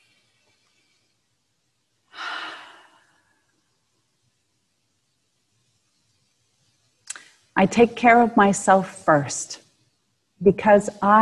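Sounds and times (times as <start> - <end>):
deep breath during a guided relaxation exercise: 2.1 - 3.5
speech: 7.6 - 9.6, 10.4 - 11.2.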